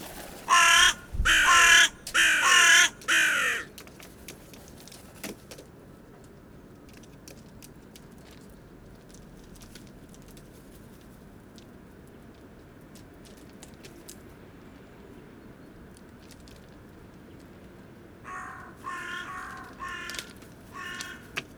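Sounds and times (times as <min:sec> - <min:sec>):
hooded crow Corvus cornix cornix calling: 0:00.0 - 0:03.7, 0:18.2 - 0:21.5.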